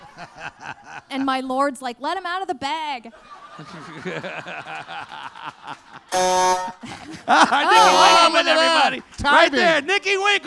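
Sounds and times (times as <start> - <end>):
laughter: 0.0 - 1.1, 3.1 - 9.8
speech: 0.2 - 10.4
loud harsh electronic buzzer: 6.1 - 6.8, 7.8 - 8.4
animated excited voices: 7.6 - 9.0.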